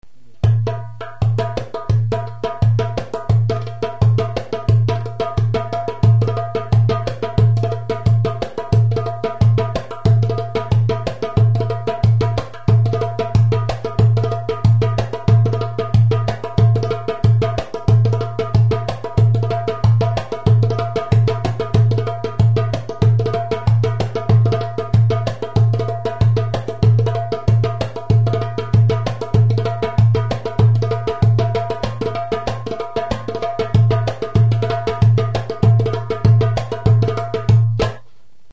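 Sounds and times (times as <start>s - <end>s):
solo darbuka playing a fezzani rhythm: 0.4s - 38.0s.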